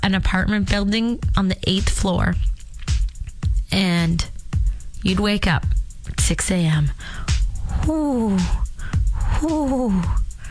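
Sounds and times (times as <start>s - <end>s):
speech: 0.1s - 2.5s, 3.7s - 4.3s, 5.0s - 7.2s, 7.8s - 8.6s, 9.4s - 10.2s
person's voice imitating pigeon cooing: 7.7s - 10.4s.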